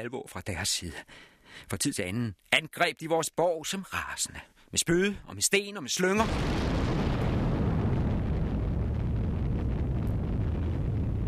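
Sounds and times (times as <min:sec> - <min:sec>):
speech: 0:00.0 - 0:07.5
heavy cannon fire at a fortress on an island: 0:06.2 - 0:11.2.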